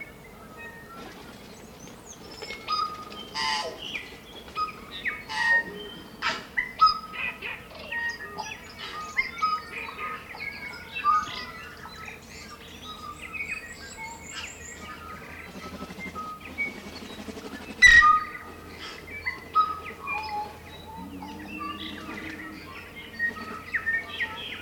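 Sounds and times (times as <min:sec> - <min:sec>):
constant low hum: 0:00.0 - 0:24.5
morning chorus of native birds in New Zealand: 0:00.0 - 0:24.5
tui song in New Zealand: 0:13.2 - 0:24.5.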